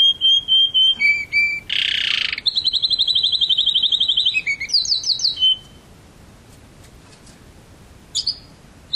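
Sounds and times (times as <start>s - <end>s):
canary singing: 0.0s - 5.9s, 8.1s - 8.9s.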